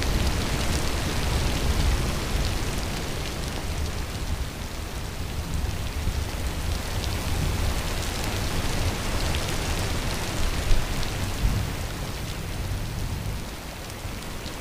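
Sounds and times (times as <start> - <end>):
heavy rain pouring: 0.0 - 14.5.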